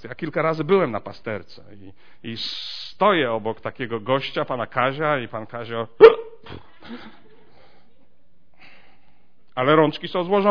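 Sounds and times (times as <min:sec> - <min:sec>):
speech: 0:00.0 - 0:07.2, 0:09.6 - 0:10.4
person imitating hiccups of a drunk man: 0:06.0 - 0:06.8.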